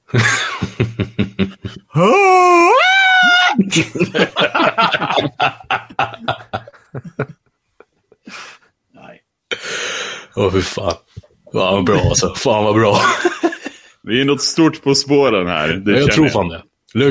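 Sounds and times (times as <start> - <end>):
speech: 0.1 - 1.1, 2.0 - 2.5, 3.7 - 5.2, 10.5 - 11.0, 11.7 - 13.3, 14.1 - 17.1
people laughing: 0.1 - 2.5, 3.2 - 7.5, 11.9 - 13.9
voice imitating a shrill girlish scream: 2.0 - 3.6.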